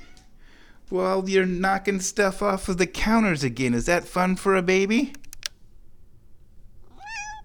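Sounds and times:
speech: 0.9 - 5.2
cat meowing: 6.9 - 7.4.

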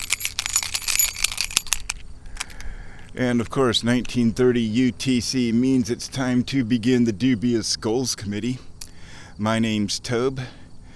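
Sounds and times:
keys jingling: 0.0 - 2.7
speech: 3.2 - 8.7, 9.4 - 10.6.

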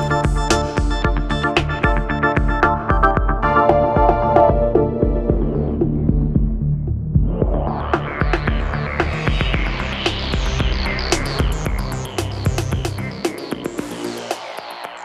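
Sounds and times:
rhythmic electronic loop with punchy beats through a filter sweep: 0.0 - 15.0.

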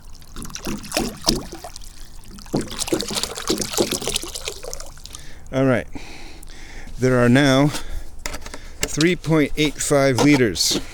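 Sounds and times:
water pouring from a container into a shallow bird bath: 0.0 - 5.4
speech: 5.5 - 6.1, 7.0 - 7.9, 9.0 - 10.9.

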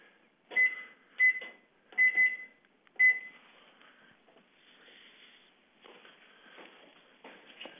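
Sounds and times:
kitchen timer beeps from button presses while making tea: 0.5 - 3.4.

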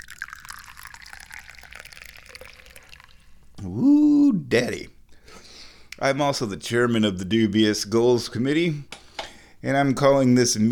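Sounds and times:
tea pouring into a cup: 0.0 - 3.4
speech: 3.6 - 4.9, 6.0 - 8.9, 9.6 - 10.7.

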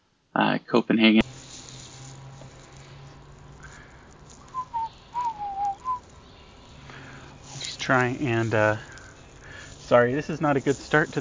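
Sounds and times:
quiet hiss: 0.0 - 11.2
speech: 0.4 - 1.3, 7.9 - 8.9, 9.9 - 11.2
birds whistling calls: 3.5 - 11.2.

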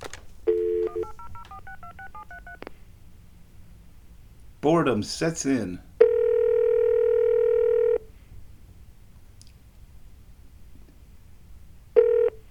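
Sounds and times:
loud steady electronic telephone tone: 0.5 - 2.6, 6.0 - 8.1, 12.0 - 12.4
speech: 4.6 - 5.9.

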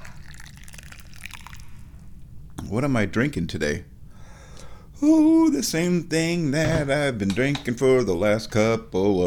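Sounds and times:
Jiguan Yin tea being poured: 0.0 - 1.9
constant low hum: 0.0 - 9.2
speech: 2.7 - 3.9, 5.0 - 9.2.

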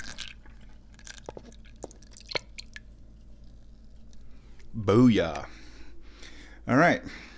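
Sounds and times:
liquid poured from a pan through a funnel into a bottle: 0.0 - 4.4
quiet drips and wet squishes: 0.0 - 5.4
low steady hum: 0.0 - 7.3
speech: 4.8 - 5.6, 6.7 - 7.3.

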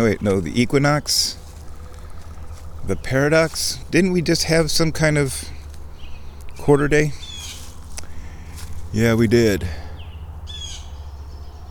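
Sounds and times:
speech: 0.0 - 1.4, 2.9 - 5.5, 6.6 - 7.2, 8.9 - 9.8
steady low hum: 0.0 - 11.6
harsh bird squawk: 7.1 - 8.4, 9.9 - 11.2.

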